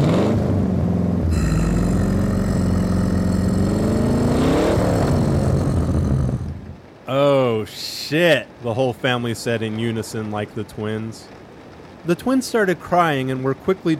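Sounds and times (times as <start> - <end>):
car engine revving: 0.0 - 6.9
speech: 8.1 - 11.4, 12.0 - 13.9.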